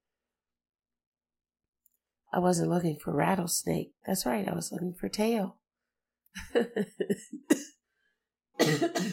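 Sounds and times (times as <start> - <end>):
speech: 2.3 - 5.6, 6.3 - 7.7, 8.6 - 9.1
person coughing harshly: 7.2 - 7.7, 8.6 - 9.1.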